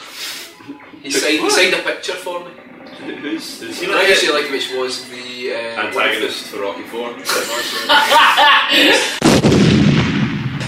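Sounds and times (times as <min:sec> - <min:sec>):
excited voices talking: 0:00.4 - 0:09.2
speech: 0:00.7 - 0:09.7
laughter: 0:05.8 - 0:09.2
bomb exploding in a video game: 0:09.2 - 0:10.6.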